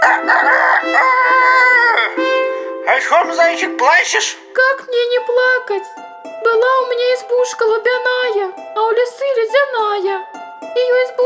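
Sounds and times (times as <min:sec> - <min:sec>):
rooster crowing: 0:00.0 - 0:02.2
speech: 0:03.0 - 0:11.2.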